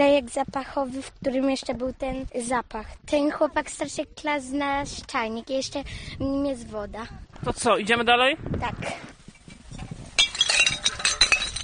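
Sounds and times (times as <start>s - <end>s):
speech: 0.0s - 9.2s
discarded alcohol glass bottles clinking together in a rubbish bag: 9.7s - 11.6s.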